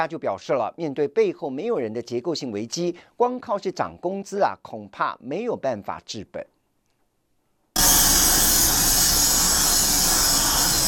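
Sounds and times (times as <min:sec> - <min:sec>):
speech: 0:00.0 - 0:06.5
harsh metal grinding on a factory production line: 0:07.8 - 0:10.8.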